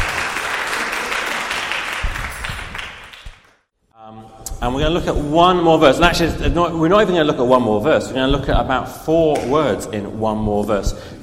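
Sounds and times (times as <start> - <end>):
crowd applauding: 0.0 - 3.5
speech: 4.6 - 11.2.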